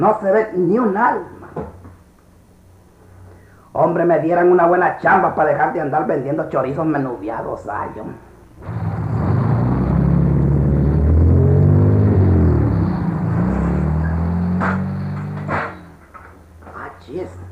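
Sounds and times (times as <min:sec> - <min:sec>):
speech: 0:00.0 - 0:01.7, 0:03.8 - 0:08.8
Mercedes car engine rumbling: 0:08.5 - 0:16.7
sharp knocks: 0:14.4 - 0:16.8.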